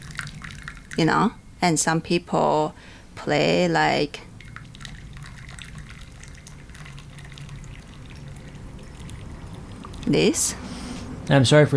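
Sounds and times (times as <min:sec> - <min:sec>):
water stream being poured: 0:00.0 - 0:01.3, 0:04.2 - 0:11.3
speech: 0:01.0 - 0:04.3, 0:10.1 - 0:10.7, 0:11.3 - 0:11.7.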